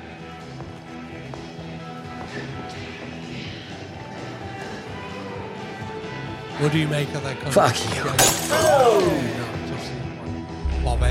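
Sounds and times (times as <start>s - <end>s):
speech: 6.6s - 9.4s, 10.8s - 11.0s
thrown glass smashing on a hard floor: 8.2s - 9.1s.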